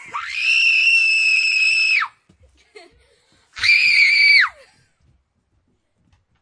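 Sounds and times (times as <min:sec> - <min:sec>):
children screaming: 0:00.0 - 0:02.2, 0:03.6 - 0:04.6.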